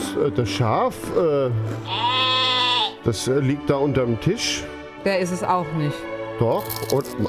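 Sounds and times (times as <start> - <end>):
speech: 0.2 - 2.3, 3.0 - 7.2
sheep bleating loudly: 1.8 - 3.1.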